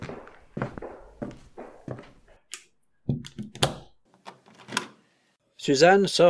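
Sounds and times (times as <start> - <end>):
footsteps on a hard floor: 0.0 - 2.5
metallic clicks and rattles of a key locking a door: 2.5 - 3.9
speech: 5.6 - 6.2.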